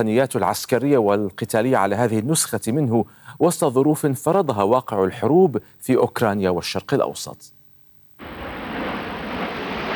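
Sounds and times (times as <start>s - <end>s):
speech: 0.0s - 7.6s
Royal Air Force aerobatic display jets roaring over Farnborough International Airshow: 8.2s - 9.9s.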